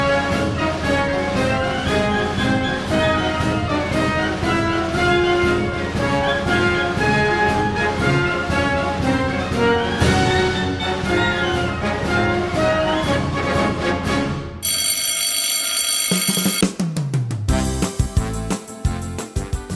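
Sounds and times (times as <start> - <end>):
brassy march music: 0.0 - 14.5, 17.5 - 19.7
loud continuous school dismissal bell ringing: 14.6 - 16.7.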